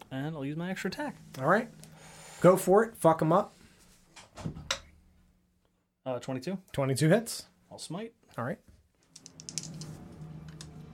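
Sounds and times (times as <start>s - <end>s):
speech: 0.1s - 3.6s, 6.0s - 8.7s
handful of dice rolling across a hard surface: 9.0s - 10.0s.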